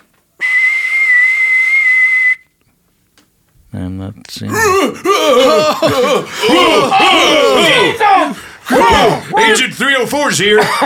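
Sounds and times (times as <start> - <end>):
whistle built into a tooth blown: 0.4 - 2.6
speech: 3.8 - 10.8
laughter: 4.5 - 10.8.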